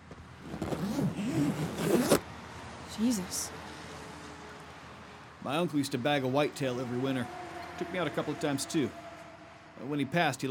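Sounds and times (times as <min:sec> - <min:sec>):
green duffel bag zipper pulled open in the back of a truck: 0:00.4 - 0:02.2
speech: 0:03.0 - 0:03.6, 0:05.4 - 0:09.0, 0:09.8 - 0:10.5.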